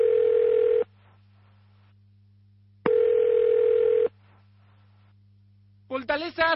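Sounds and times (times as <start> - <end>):
telephone ringing inside a fortress: 0.0 - 0.9, 2.9 - 4.1
faint steady low hum: 0.0 - 6.5
speech: 6.2 - 6.5.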